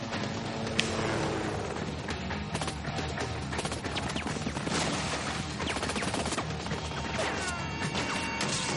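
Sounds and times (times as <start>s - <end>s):
action-scene film soundtrack: 0.0s - 8.7s
gunshots in a film action scene: 3.5s - 8.7s.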